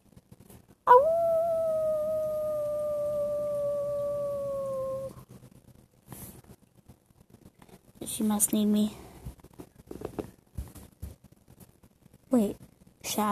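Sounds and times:
wolf howling: 0.9s - 5.2s
speech: 8.1s - 9.0s, 12.4s - 13.2s.

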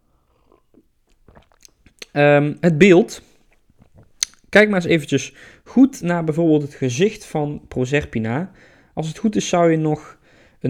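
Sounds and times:
person slurping and swallowing coffee: 0.0s - 2.2s, 3.3s - 4.4s
speech: 2.2s - 3.3s, 4.5s - 10.6s.

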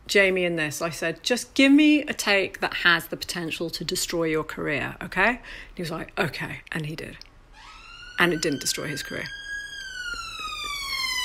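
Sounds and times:
speech: 0.1s - 7.3s, 8.2s - 9.4s
emergency vehicle siren wailing: 7.5s - 11.2s.

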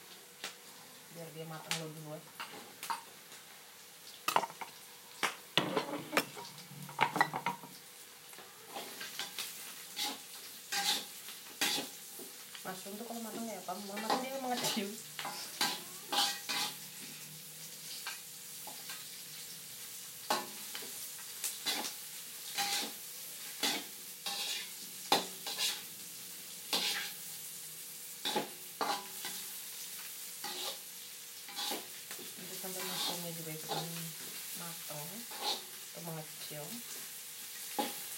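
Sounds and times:
mushrooms frying in a pan with softened vegetables: 0.0s - 38.1s
speech: 1.2s - 2.9s, 12.8s - 15.1s, 33.1s - 34.2s
utensil stirring against the pan: 5.6s - 7.7s, 8.7s - 12.0s, 14.0s - 17.2s, 22.5s - 23.0s, 23.6s - 25.8s, 26.7s - 27.2s, 31.5s - 31.9s, 32.7s - 34.0s, 35.3s - 35.7s.

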